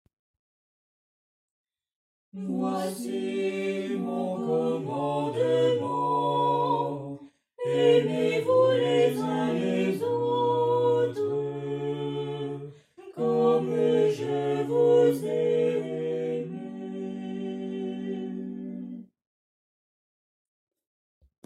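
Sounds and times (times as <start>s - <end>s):
four voices: 2.4s - 19.0s.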